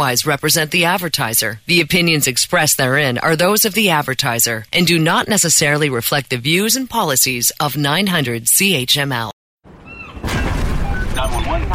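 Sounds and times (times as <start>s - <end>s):
speech: 0.0s - 9.3s
explosion on a cruise ship with heavy roaring rumble: 9.7s - 11.7s.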